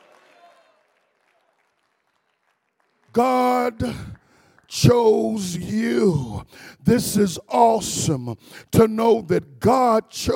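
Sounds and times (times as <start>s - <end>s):
audience clapping: 0.0s - 5.5s
preacher speaking: 3.1s - 10.3s
speech: 3.1s - 10.3s.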